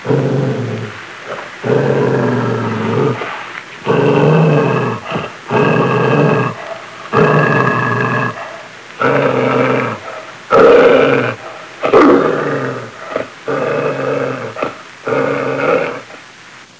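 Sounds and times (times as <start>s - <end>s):
growling: 0.0s - 16.2s.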